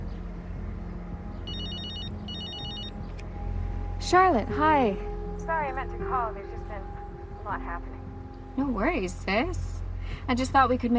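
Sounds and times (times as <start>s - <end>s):
telephone ringing with high trilling electronic tone: 1.5s - 2.9s
speech: 4.1s - 6.5s, 7.5s - 8.0s, 8.6s - 10.9s.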